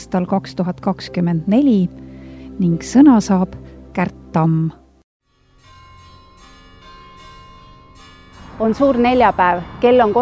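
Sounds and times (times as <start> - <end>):
speech: 0.1 - 2.0, 2.6 - 4.8, 8.6 - 10.2
church bells ringing in Estonia on Maundy Thursday: 5.4 - 10.2.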